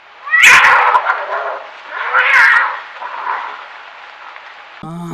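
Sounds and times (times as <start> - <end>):
cat meowing strained and wavering: 0.2 - 3.6.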